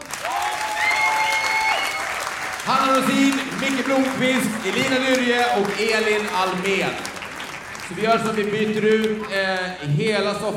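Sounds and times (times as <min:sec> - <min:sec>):
room full of people clapping: 0:00.0 - 0:09.9
speech: 0:02.7 - 0:07.1, 0:07.9 - 0:10.5.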